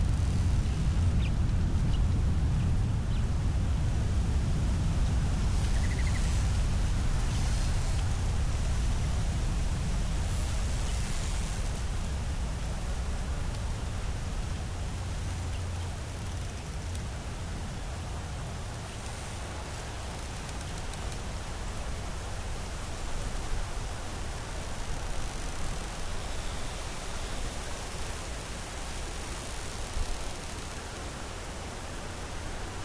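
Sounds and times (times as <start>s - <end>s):
gentle wind blowing: 0.0s - 32.8s
faint chirp: 5.7s - 6.3s.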